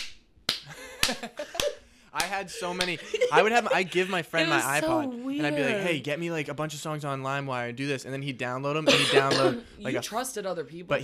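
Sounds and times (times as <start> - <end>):
sharp crisp hand claps with ringing decay: 0.0 - 3.0
laughter: 0.7 - 4.8
speech: 1.1 - 11.0.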